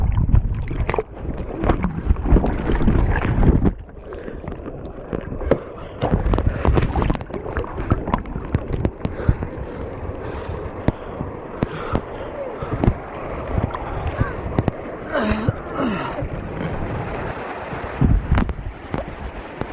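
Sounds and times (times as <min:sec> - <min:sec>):
churning river water rushing and splashing from a kayak going over a weir: 0:00.0 - 0:19.7
wind buffeting the microphone: 0:00.0 - 0:19.7.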